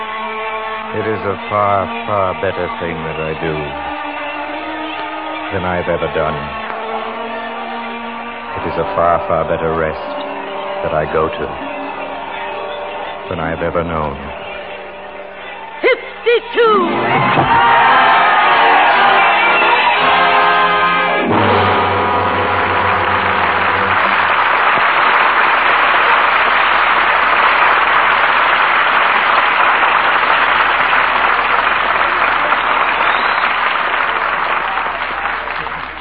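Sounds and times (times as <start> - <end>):
musical tones: 0.0 - 24.7
dense crowd roaring and cheering: 0.0 - 35.9
speech: 1.0 - 4.0, 5.5 - 6.6, 8.6 - 10.2, 10.8 - 11.6, 13.3 - 14.3, 16.4 - 18.0.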